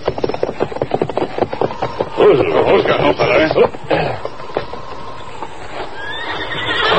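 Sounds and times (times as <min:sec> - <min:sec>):
horse hooves clip-clopping: 0:00.0 - 0:06.9
horse shuffling: 0:00.0 - 0:06.9
horse sheltering by a line shed whinnying: 0:01.6 - 0:06.9.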